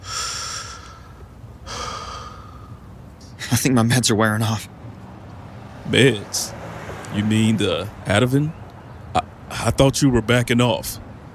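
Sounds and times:
long deliberate deep breaths of a breathing exercise: 0.0 - 3.6
speech: 3.5 - 4.8, 5.9 - 8.6, 9.6 - 11.0.

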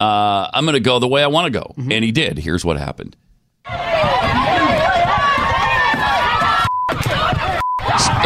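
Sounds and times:
speech: 0.0 - 3.8
agitated crowd shouting and yelling: 3.7 - 8.2
censor beeps: 6.6 - 7.0, 7.6 - 7.9.

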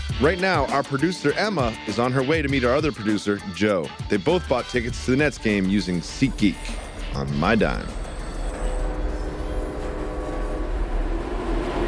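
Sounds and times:
speech: 0.1 - 8.0
faint metallic whine and squealing of a subway train car: 5.7 - 11.8
subway train car rolling along the rails: 6.8 - 11.8.

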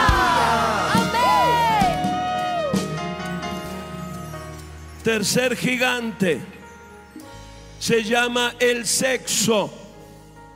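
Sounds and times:
crowd shouting hallelujah and cheering: 0.0 - 4.3
speech: 5.0 - 6.6, 7.8 - 9.8.

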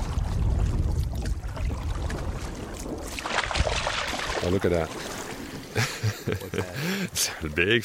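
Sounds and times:
water swishing and splashing around a small canoe on a river: 0.0 - 7.8
speech: 4.4 - 5.1, 5.8 - 7.8
laughter: 5.7 - 7.3.

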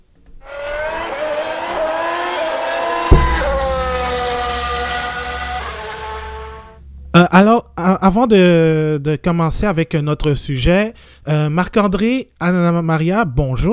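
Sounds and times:
race car engines roaring at a race start: 0.4 - 6.8
deep thump: 3.0 - 7.1
speech: 7.1 - 13.7.

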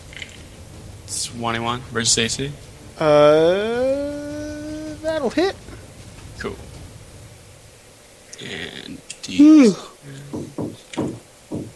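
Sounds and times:
speech: 1.3 - 4.2, 5.2 - 5.7, 6.4 - 6.7, 8.4 - 11.1
knocking on a door: 10.3 - 11.7.

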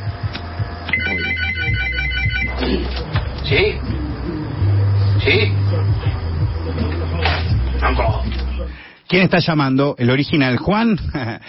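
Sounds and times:
low hum: 0.0 - 11.4
phone ringtone with bright repeating electronic melody: 0.9 - 2.6
speech: 3.5 - 3.8, 5.2 - 5.6, 9.1 - 11.4.

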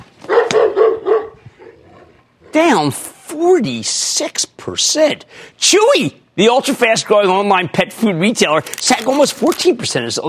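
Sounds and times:
dog barking: 0.2 - 2.6
speech: 2.6 - 10.2.

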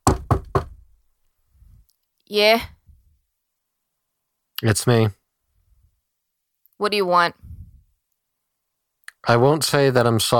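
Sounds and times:
firm knocks on a wooden door: 0.0 - 0.8
speech: 2.3 - 2.8, 4.6 - 5.2, 6.8 - 7.5, 9.2 - 10.3.

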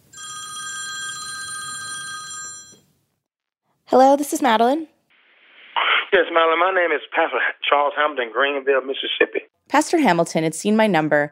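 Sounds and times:
telephone bell ringing in a bright trilling burst: 0.0 - 3.0
speech: 3.9 - 4.9, 6.1 - 11.3.

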